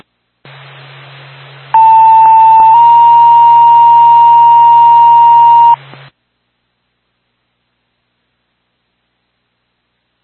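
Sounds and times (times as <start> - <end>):
constant radio hiss: 0.0 - 6.1
EMS dispatch paging tone for a medical alarm call: 1.8 - 5.8.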